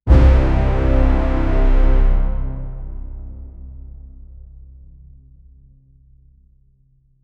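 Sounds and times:
aggressive cinematic brass: 0.1 - 4.9.

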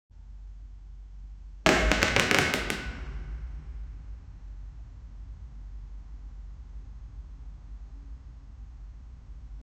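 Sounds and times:
ceiling collapsing: 1.7 - 3.6.

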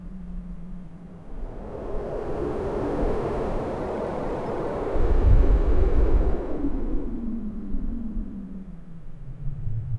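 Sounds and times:
realistic wind rushing: 1.2 - 7.9.

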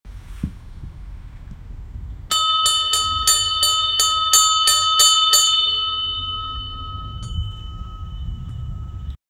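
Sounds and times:
bell ringing as a signal: 2.3 - 9.2.

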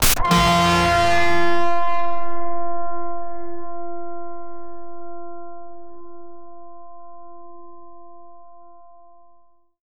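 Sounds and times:
EDM laser pluck: 0.0 - 2.7.

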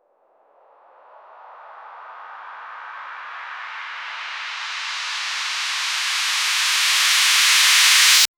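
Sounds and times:
swoosh uplifter: 2.2 - 8.3.

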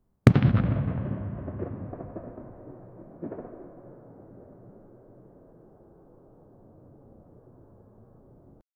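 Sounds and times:
reverberant outdoor gun explosion burst: 0.3 - 5.2.

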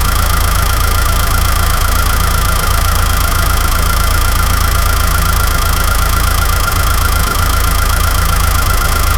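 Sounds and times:
V6 engine idling at 800 rpm: 0.0 - 9.1.

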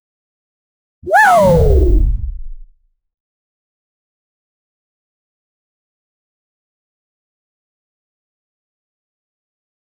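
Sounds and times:
soft cartoon platformer jump sound: 1.1 - 2.7.

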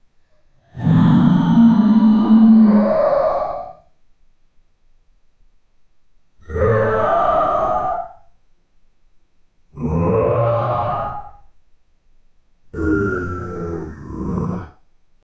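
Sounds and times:
inhuman uncanny creature in a chase: 0.6 - 3.8, 6.4 - 8.2, 9.8 - 11.5, 12.8 - 14.8.

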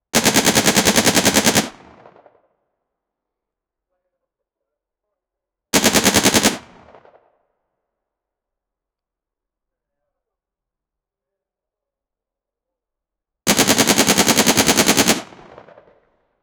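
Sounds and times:
KPV 145 automatic machine gun fire: 0.2 - 2.1, 5.8 - 7.0, 13.5 - 15.9.

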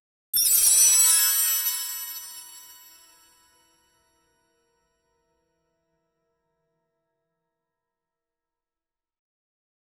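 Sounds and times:
bright ascending musical chime: 0.4 - 3.6.

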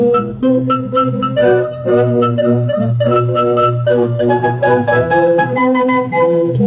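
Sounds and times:
distorted circus music: 0.1 - 6.5.

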